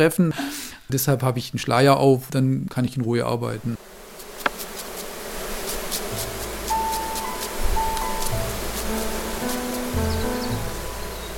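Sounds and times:
speech: 0.0 - 4.0
honeybees buzzing at an open hive: 3.4 - 11.3.

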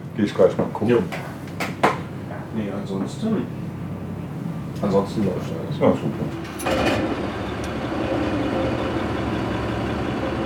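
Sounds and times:
speech: 0.2 - 1.8, 2.6 - 3.6, 4.8 - 7.4
large ferry engines running in the ship's engine room: 2.1 - 10.4.

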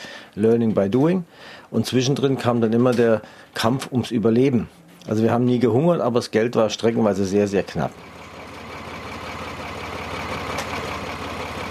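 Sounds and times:
speech: 0.4 - 8.1
tractor engine running: 7.8 - 11.6.

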